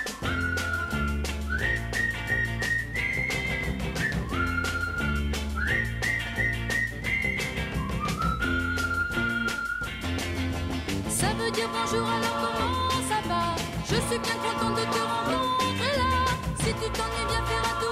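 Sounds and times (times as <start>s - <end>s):
person whistling a short call tune: 0.0s - 10.4s
loud instrumental backing music: 0.0s - 17.9s
speech: 11.8s - 12.5s.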